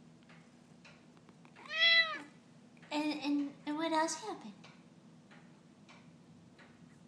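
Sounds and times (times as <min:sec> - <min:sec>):
faint low hum: 0:00.0 - 0:07.0
cat meowing: 0:01.6 - 0:02.3
speech: 0:03.0 - 0:04.7.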